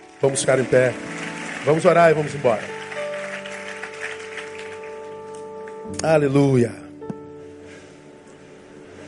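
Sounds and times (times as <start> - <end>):
rain falling: 0.0 - 5.2
speech: 0.2 - 2.8, 5.9 - 6.8.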